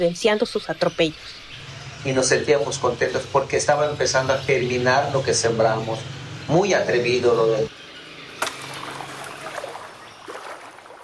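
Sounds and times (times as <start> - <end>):
speech: 0.0 - 1.4, 2.0 - 7.8
walking through flowing water in a stream: 8.4 - 11.0.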